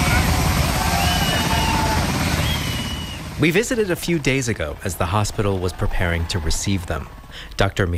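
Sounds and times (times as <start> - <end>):
helicopter carrying freed hostages landing, rotors roaring: 0.0 - 7.9
indistinct cheering voices of a crowd: 0.0 - 7.9
speech: 3.4 - 7.9.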